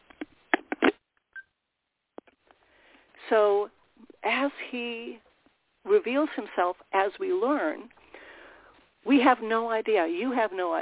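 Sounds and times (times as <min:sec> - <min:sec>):
clicks and rattles of a speaker switching phones: 0:00.0 - 0:01.0
speech: 0:03.3 - 0:08.0, 0:09.0 - 0:10.8.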